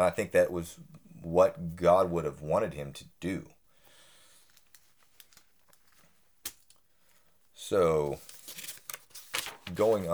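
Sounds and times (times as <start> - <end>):
speech: 0.0 - 3.6, 7.7 - 8.6, 9.7 - 10.1
paper rustling as pages are shuffled: 4.4 - 7.2, 8.0 - 10.1.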